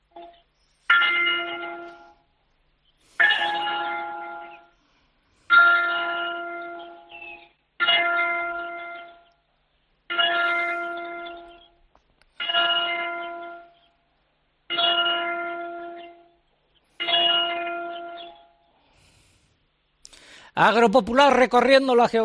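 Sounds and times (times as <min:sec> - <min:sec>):
church bell tolling nine o'clock in Spain over a telephone: 0:00.0 - 0:02.4, 0:03.2 - 0:04.8, 0:05.5 - 0:09.3, 0:10.1 - 0:11.8, 0:12.4 - 0:13.9, 0:14.7 - 0:18.7
speech: 0:20.6 - 0:22.2.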